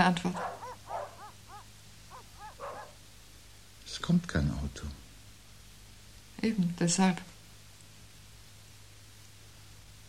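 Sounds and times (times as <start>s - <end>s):
speech: 0.0s - 0.6s, 4.0s - 5.0s, 6.4s - 7.3s
dogs barking: 0.0s - 3.0s
low steady hum: 0.0s - 10.0s.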